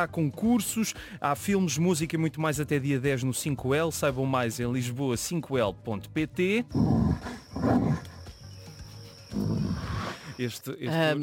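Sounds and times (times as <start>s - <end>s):
speech: 0.0s - 8.1s, 10.4s - 11.2s
bear roaring: 6.7s - 8.2s, 9.3s - 10.4s.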